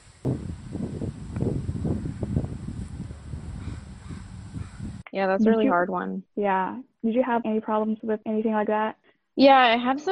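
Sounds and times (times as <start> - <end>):
leaves rustling in the wind under a tree: 0.0 - 5.0
speech: 5.2 - 10.1.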